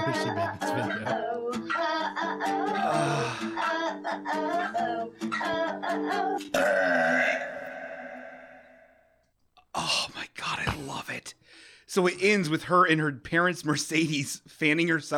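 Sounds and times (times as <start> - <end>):
speech: 0.1 - 7.6, 9.8 - 15.1
person belching loudly: 2.8 - 3.6, 6.5 - 8.8.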